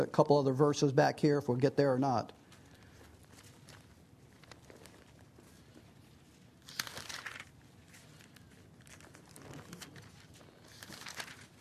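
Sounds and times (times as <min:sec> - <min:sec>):
speech: 0:00.0 - 0:02.4
steady hum: 0:00.0 - 0:11.6
bible pages being flipped: 0:02.4 - 0:11.6
paper rustling and crinkling: 0:02.4 - 0:11.6.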